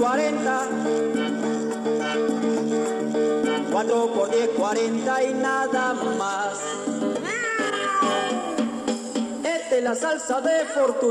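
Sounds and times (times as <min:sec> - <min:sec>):
musical backing of a song with plucky accents: 0:00.0 - 0:11.0
speech: 0:03.8 - 0:08.3, 0:09.8 - 0:11.0
long drawn-out cat meow: 0:07.2 - 0:08.8.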